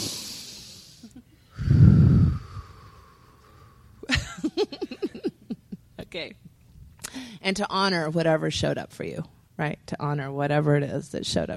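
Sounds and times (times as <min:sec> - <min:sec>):
people taking a collective deep breath: 0:00.0 - 0:04.0, 0:07.0 - 0:07.4
laughter: 0:04.1 - 0:05.8
speech: 0:06.1 - 0:06.4, 0:07.2 - 0:11.5.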